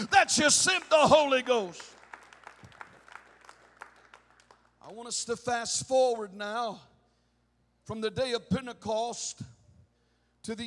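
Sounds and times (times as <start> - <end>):
speech: 0.0 - 2.0, 4.9 - 6.9, 7.9 - 9.5, 10.4 - 10.6
audience clapping hands in a large room: 0.0 - 5.1.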